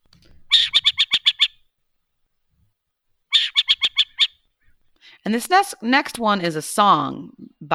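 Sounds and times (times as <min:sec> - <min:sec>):
Western burrowing owl raspy chattering call: 0:00.2 - 0:01.6, 0:03.3 - 0:04.4
speech: 0:05.2 - 0:07.7.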